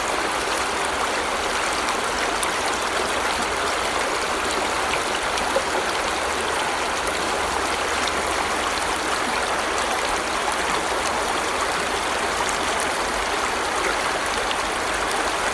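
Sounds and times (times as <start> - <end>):
river rushing: 0.0 - 15.5.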